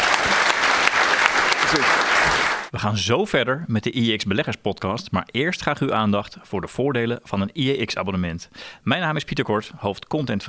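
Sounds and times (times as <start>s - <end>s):
audience applause for a guest: 0.0s - 2.7s
speech: 2.8s - 10.4s.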